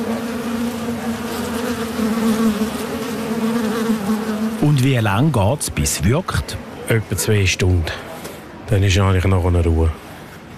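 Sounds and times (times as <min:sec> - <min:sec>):
many wasps buzzing at a nest entrance in a house facade cavity: 0:00.0 - 0:04.9
speech: 0:04.9 - 0:08.1, 0:08.7 - 0:10.0.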